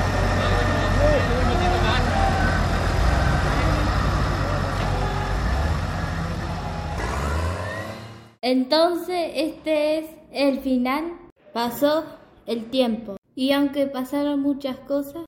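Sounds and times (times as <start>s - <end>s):
tractor diesel engine rumbling: 0.0s - 8.4s
speech: 8.5s - 15.2s.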